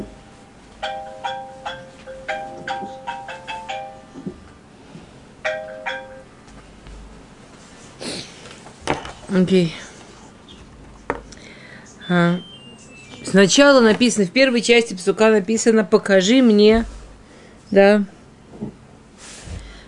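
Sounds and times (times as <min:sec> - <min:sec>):
low hum: 0:00.0 - 0:19.8
phone ringtone or alarm chiming bright electronic tones: 0:00.8 - 0:04.1, 0:05.5 - 0:06.3, 0:12.0 - 0:13.4
person sniffing: 0:07.8 - 0:08.5, 0:19.2 - 0:19.8
speech: 0:09.3 - 0:09.8, 0:13.4 - 0:17.0, 0:17.7 - 0:18.2.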